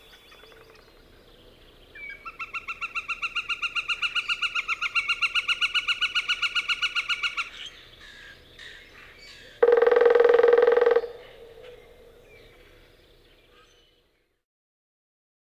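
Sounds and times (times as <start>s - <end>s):
northern flicker calling: 2.0s - 12.8s.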